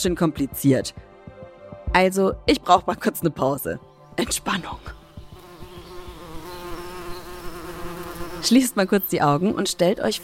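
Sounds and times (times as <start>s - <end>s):
speech: 0.0s - 1.1s, 1.9s - 5.0s, 8.4s - 10.2s
bees buzzing: 4.2s - 10.2s.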